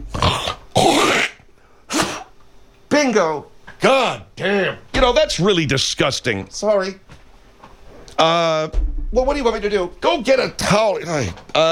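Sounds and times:
person hawking up phlegm and clearing their throat: 0.0s - 2.4s
speech: 3.0s - 7.0s, 8.2s - 11.7s.

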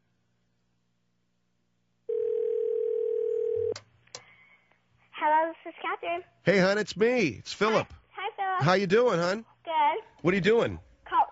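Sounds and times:
droning electronic phone line ring tone on a call to a house: 2.1s - 3.8s
speech: 5.5s - 8.0s, 8.6s - 10.9s.

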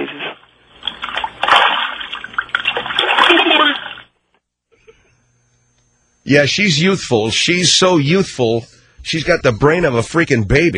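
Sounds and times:
water splashing in a bathtub: 0.0s - 4.1s
speech: 6.3s - 10.7s.

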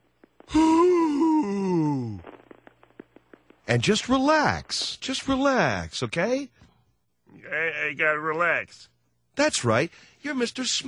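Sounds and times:
person letting out a deep breath as a long voiced sigh: 0.5s - 2.3s
speech: 3.7s - 6.6s, 7.5s - 10.8s.

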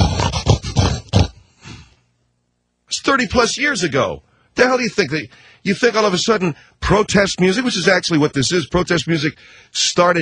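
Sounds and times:
pig oinking at the start of a blues-rock tune: 0.0s - 1.4s
speech: 3.1s - 10.1s.

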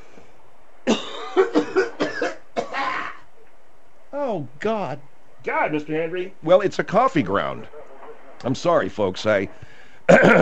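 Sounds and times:
harsh coughing: 0.9s - 3.2s, 10.1s - 10.4s
speech: 1.4s - 1.6s, 4.6s - 7.8s, 8.4s - 10.4s.

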